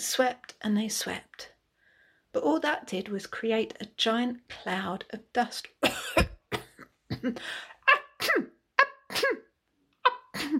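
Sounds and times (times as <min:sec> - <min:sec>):
speech: 0:00.0 - 0:01.5, 0:02.3 - 0:06.3, 0:07.2 - 0:08.5
voice acting out exaggerated coughs and sneezes: 0:05.8 - 0:07.3, 0:08.0 - 0:09.5.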